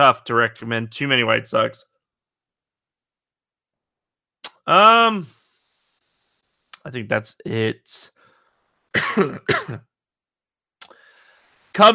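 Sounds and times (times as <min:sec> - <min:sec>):
speech: 0:00.0 - 0:01.9, 0:04.7 - 0:05.4, 0:06.8 - 0:08.1, 0:09.0 - 0:09.9, 0:11.8 - 0:11.9
harsh coughs into an unmuted microphone: 0:09.0 - 0:09.8.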